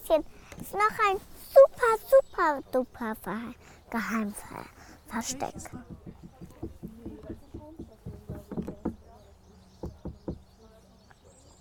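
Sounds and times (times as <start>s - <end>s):
faint voices murmuring: 0.0s - 11.5s
speech: 0.1s - 6.0s
people knocking on a stone: 5.3s - 9.1s, 9.8s - 10.4s.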